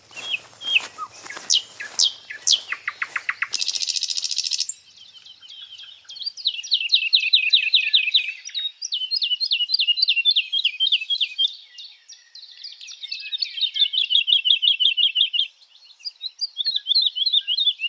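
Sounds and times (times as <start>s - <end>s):
broadband rustle: 0.0s - 3.6s
songbirds singing in forest canopy: 0.0s - 17.8s.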